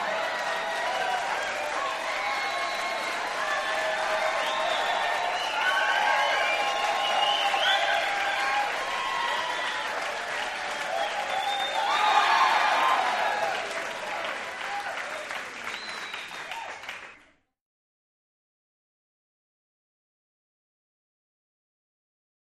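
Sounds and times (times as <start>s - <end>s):
crowd of 100 with whistles: 0.1s - 13.7s, 14.7s - 17.3s.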